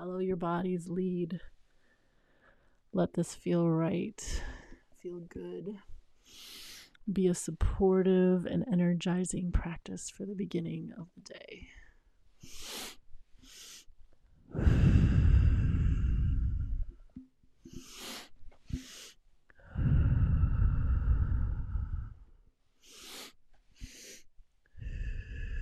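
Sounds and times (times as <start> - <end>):
speech: 0.2 - 1.6, 2.9 - 11.8
deep breathing: 1.7 - 2.9, 6.2 - 7.0, 11.6 - 25.6.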